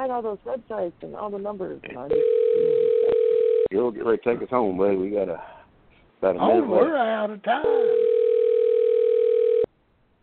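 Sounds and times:
speech: 0:00.0 - 0:05.6, 0:06.2 - 0:08.0
phone ringing: 0:02.1 - 0:03.7, 0:07.8 - 0:09.7.

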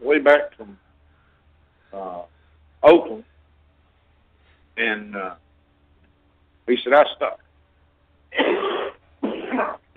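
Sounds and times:
speech: 0:00.2 - 0:00.8, 0:02.8 - 0:03.3, 0:04.8 - 0:05.4, 0:06.7 - 0:07.4
coughing: 0:08.3 - 0:09.9
throat clearing: 0:08.3 - 0:09.9.

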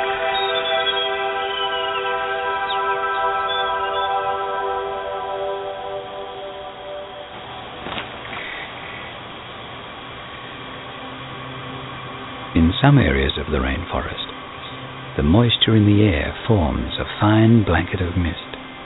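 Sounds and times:
birds calling in a rainforest canopy: 0:00.2 - 0:04.4
speech: 0:12.8 - 0:14.3, 0:15.2 - 0:18.5.

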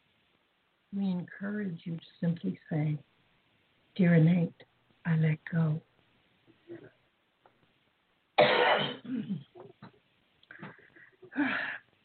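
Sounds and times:
speech: 0:00.9 - 0:03.1, 0:04.0 - 0:05.9, 0:08.4 - 0:10.0, 0:10.6 - 0:11.8
person clearing throat and coughing: 0:08.4 - 0:10.0.

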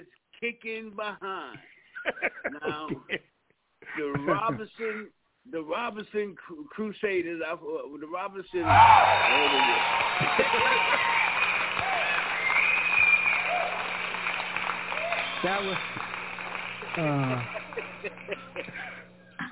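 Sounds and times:
speech: 0:00.1 - 0:11.2, 0:15.4 - 0:16.1, 0:17.0 - 0:18.8
laughter: 0:01.9 - 0:03.2, 0:03.9 - 0:04.8, 0:08.6 - 0:12.6, 0:13.6 - 0:19.4
crowd applauding: 0:08.6 - 0:19.1.

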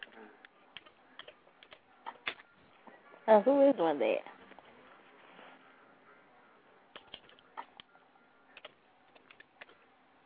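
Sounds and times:
slow hunt-and-peck typing on a keyboard: 0:00.0 - 0:02.4, 0:06.9 - 0:07.9, 0:08.6 - 0:09.8
speech: 0:03.3 - 0:04.3.

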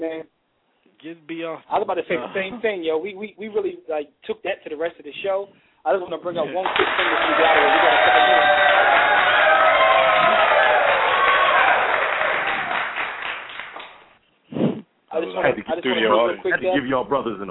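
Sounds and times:
speech: 0:01.0 - 0:08.8, 0:15.4 - 0:17.4
crowd applauding and cheering: 0:06.6 - 0:14.1.

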